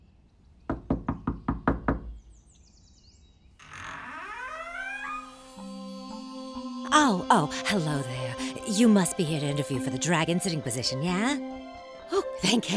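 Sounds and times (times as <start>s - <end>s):
knocking on a big heavy door: 0.7s - 2.2s
speech: 7.0s - 11.7s, 12.4s - 12.7s.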